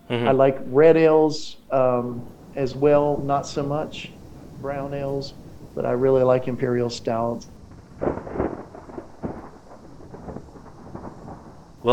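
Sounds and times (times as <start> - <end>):
thunder rumbling from a storm: 0.0 - 11.9
speech: 0.1 - 8.4.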